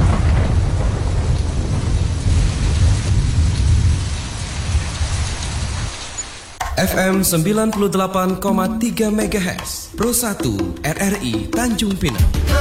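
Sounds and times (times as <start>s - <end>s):
deep low continuous thunder rumbling: 0.0s - 8.2s
steady heavy rain pouring down: 0.0s - 10.4s
speech: 6.8s - 12.5s.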